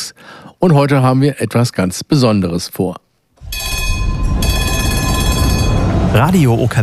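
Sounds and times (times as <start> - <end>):
speech: 0.6 - 3.7, 6.2 - 6.8
historic tram rumbling along its rails: 3.4 - 6.8.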